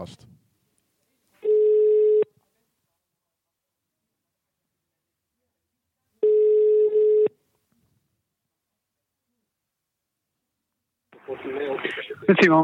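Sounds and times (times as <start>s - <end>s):
speech: 0.0s - 0.3s, 11.4s - 12.6s
ringback tone of an outgoing telephone call: 1.4s - 2.3s, 6.2s - 7.4s.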